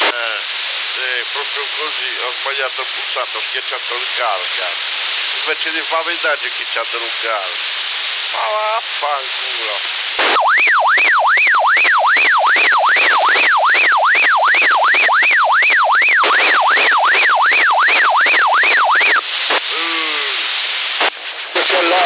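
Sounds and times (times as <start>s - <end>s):
scattered noisy sounds: 0.0s - 22.0s
speech: 1.6s - 11.6s
ambulance siren picked up over CB radio in Sassari: 10.3s - 19.2s.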